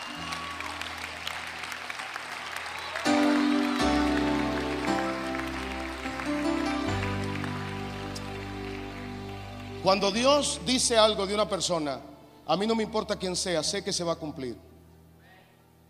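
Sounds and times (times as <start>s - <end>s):
audience applauding: 0.0s - 10.9s
sustained organ-like keyboard chords: 3.0s - 13.7s
speech: 9.8s - 14.7s.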